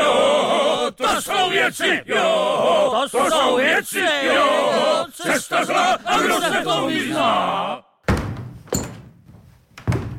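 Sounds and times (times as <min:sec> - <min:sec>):
speech: 0:01.1 - 0:07.8
heavy wooden thuds on a ship's deck floor: 0:08.1 - 0:10.1.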